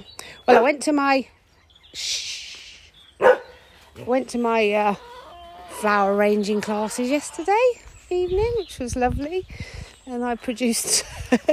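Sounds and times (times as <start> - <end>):
speech: 0.0 - 2.3, 4.0 - 5.1, 5.8 - 11.5
dogs barking excitedly at a cat: 0.5 - 0.8, 3.2 - 3.7.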